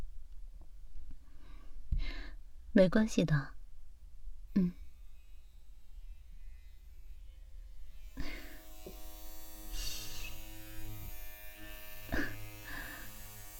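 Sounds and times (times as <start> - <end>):
speech: 2.1 - 3.6, 4.6 - 4.8
electric hair clippers buzzing: 7.9 - 13.5
brushing sounds: 9.6 - 13.1.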